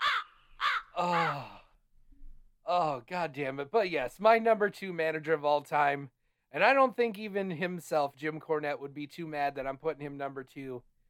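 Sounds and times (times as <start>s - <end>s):
crow cawing: 0.0s - 1.6s
speech: 1.0s - 1.5s, 2.7s - 10.9s.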